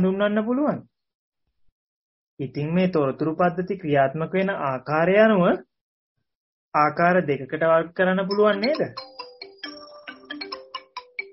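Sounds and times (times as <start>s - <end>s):
speech: 0.0s - 0.9s, 2.4s - 5.7s, 6.7s - 9.1s
faint tinny phone ringtone of melodic beeps: 8.3s - 11.3s.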